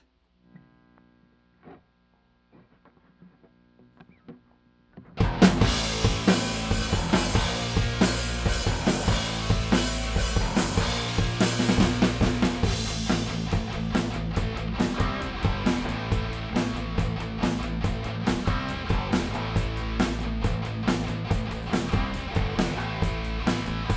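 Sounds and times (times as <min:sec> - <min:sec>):
drum stems: 0:02.5 - 0:23.9.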